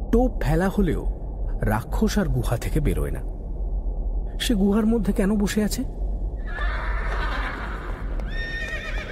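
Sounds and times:
speech: 0.1s - 3.4s, 4.4s - 6.8s
restless horse neighing in shrill wavering whinnies: 6.4s - 9.1s
faint shuffling horse hoof sounds: 6.5s - 9.1s.

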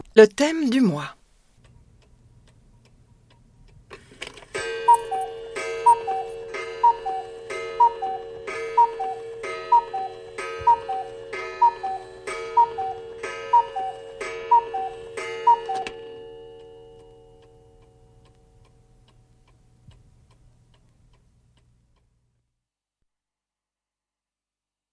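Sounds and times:
speech: 0.2s - 1.2s
clock ticking: 4.6s - 22.2s.

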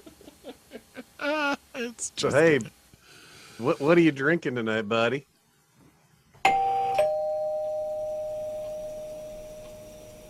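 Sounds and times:
speech: 1.2s - 2.8s, 3.6s - 5.3s
two-note ding-dong doorbell chime: 6.5s - 10.2s.

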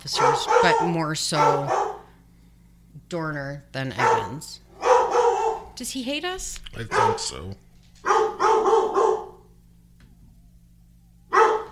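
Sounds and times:
speech: 0.0s - 1.9s, 3.1s - 4.7s, 5.8s - 7.6s
dog barking: 0.0s - 2.2s, 3.9s - 5.8s, 6.8s - 9.5s, 11.3s - 11.7s
low steady hum: 0.0s - 11.7s.

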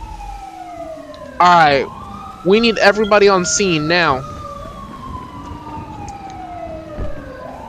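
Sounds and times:
fire EMS ambulance siren wailing: 0.0s - 7.6s
low rumble of road noise: 0.0s - 7.6s
speech: 1.4s - 4.3s.

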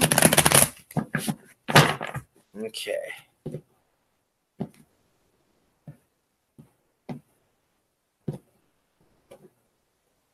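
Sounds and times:
deck of cards being riffle-shuffled: 0.0s - 1.4s
speech: 2.6s - 3.3s.

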